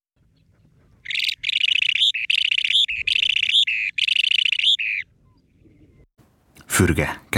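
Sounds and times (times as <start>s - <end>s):
rare bird chirping: 0.2s - 6.1s
speech: 6.8s - 7.3s.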